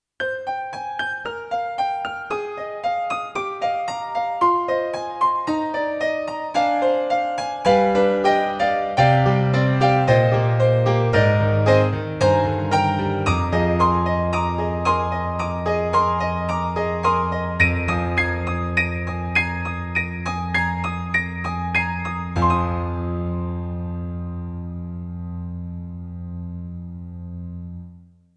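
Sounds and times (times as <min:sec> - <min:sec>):
synthesizer acoustic piano with octave strings: 0:00.2 - 0:28.2.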